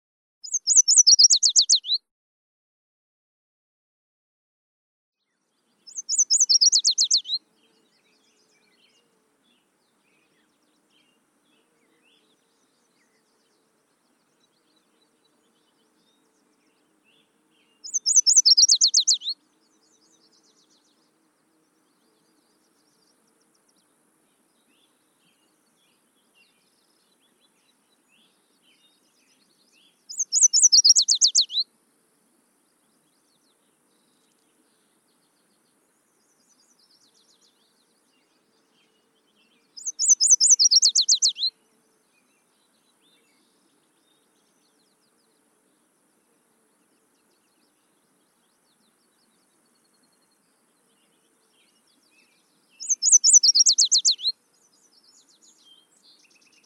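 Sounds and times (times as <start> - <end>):
warbler singing: 0.4 - 2.0, 5.3 - 31.7, 32.6 - 56.6.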